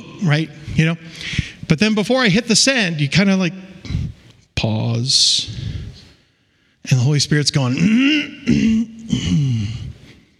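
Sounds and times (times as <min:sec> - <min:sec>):
speech: 0:00.2 - 0:04.0, 0:04.6 - 0:05.7, 0:06.8 - 0:09.6
man's voice imitating throat clearing: 0:07.7 - 0:10.0.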